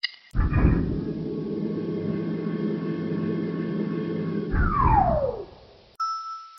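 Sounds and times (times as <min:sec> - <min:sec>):
elevator: 0:00.4 - 0:05.5.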